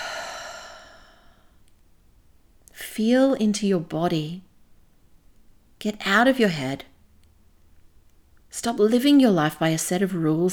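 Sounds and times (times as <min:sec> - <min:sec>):
person taking a deep breath during a guided heart-focused exercise: 0:00.0 - 0:01.5
speech: 0:03.0 - 0:04.5, 0:05.8 - 0:06.9, 0:08.5 - 0:10.5.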